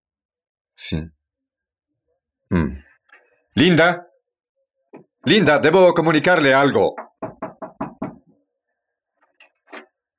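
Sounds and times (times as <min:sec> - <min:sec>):
speech: 0:00.9 - 0:01.2, 0:02.5 - 0:02.9, 0:03.6 - 0:04.1, 0:05.0 - 0:07.1
firm knocking on a door: 0:06.9 - 0:08.3.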